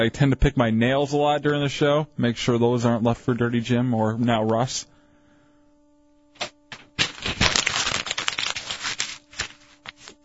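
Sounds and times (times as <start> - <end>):
speech: 0.0 - 5.0
paper being crumpled: 6.4 - 10.2.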